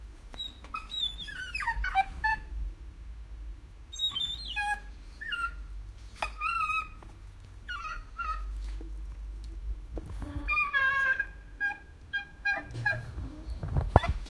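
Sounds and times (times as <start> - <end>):
rabbit squeaking: 0.4 - 2.5, 3.9 - 8.7, 10.1 - 14.2.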